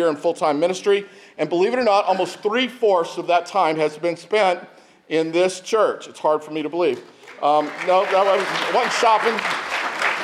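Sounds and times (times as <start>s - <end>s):
speech: 0.0s - 9.7s
audience applauding: 7.2s - 10.2s.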